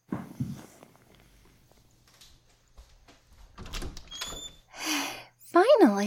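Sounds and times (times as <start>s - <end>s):
door clunking and squeaking as it swings open: 3.5s - 4.7s
door lock clicking and rattling while being unlocked: 3.6s - 4.6s.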